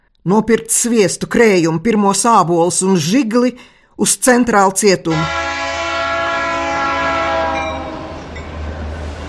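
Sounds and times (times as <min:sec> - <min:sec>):
speech: 0:00.2 - 0:05.6
tram running on rails with metallic whine and rumble: 0:05.2 - 0:09.2.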